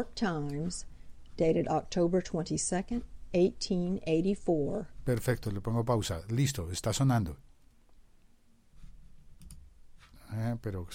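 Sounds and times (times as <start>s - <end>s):
speech: 0.0s - 7.5s, 10.3s - 10.9s
computer mouse clicking on a title: 9.4s - 9.7s.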